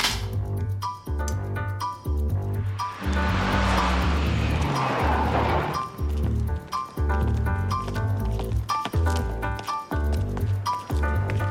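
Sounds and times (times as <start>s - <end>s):
rhythmic low thumping: 0.2s - 11.4s
car rushing past: 2.3s - 6.7s.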